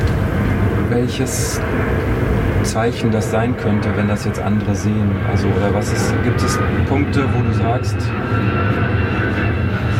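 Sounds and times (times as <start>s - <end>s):
airplane on approach roaring overhead: 0.0s - 9.9s
speech: 1.0s - 9.1s.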